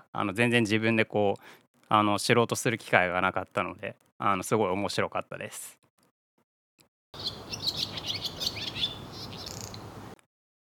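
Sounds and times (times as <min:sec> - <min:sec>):
speech: 0:00.1 - 0:05.8
bright twittering bird chirps in a transition sound effect: 0:07.2 - 0:09.8.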